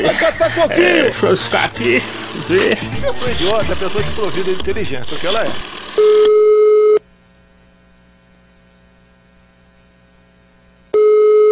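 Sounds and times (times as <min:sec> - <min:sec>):
laughter: 0:00.0 - 0:05.6
low mains hum: 0:00.0 - 0:11.4
speech: 0:00.2 - 0:06.5
telephone ringing tone on the caller's line: 0:05.1 - 0:07.0, 0:11.0 - 0:11.4.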